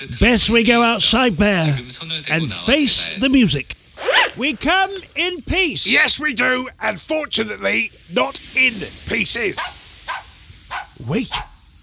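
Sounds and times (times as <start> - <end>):
speech: 0.0 - 3.8, 4.4 - 9.8, 11.0 - 11.5
dog barking: 9.5 - 11.6.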